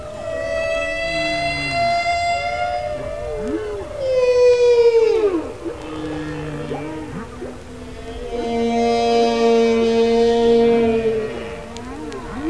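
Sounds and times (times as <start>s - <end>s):
killer whale tonal squealing calls: 0.0s - 12.4s.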